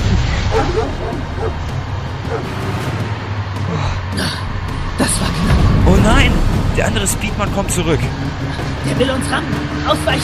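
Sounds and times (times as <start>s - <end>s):
steady low rumble: 0.0s - 9.6s
excited dog barking and yipping: 0.5s - 1.6s, 2.3s - 2.5s
speech: 6.0s - 10.2s.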